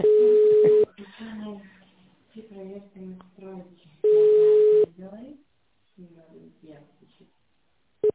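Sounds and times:
telephone line tone while a call connects: 0.0s - 0.9s, 4.1s - 4.9s.

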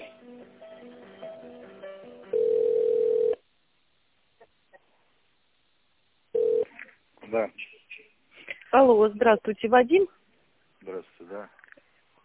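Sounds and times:
telephone ringback tones during call transfer: 2.3s - 3.4s, 6.4s - 6.7s
speech: 7.3s - 7.8s, 8.7s - 10.2s.

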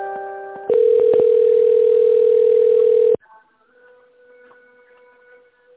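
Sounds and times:
telephone line tones while a business call is transferred: 0.7s - 3.2s.

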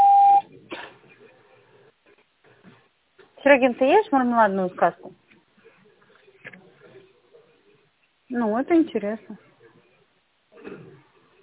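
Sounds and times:
voicemail beep after a recorded phone announcement: 0.0s - 0.4s
faint noise: 0.0s - 11.4s
speech: 3.5s - 5.2s, 8.4s - 9.5s.

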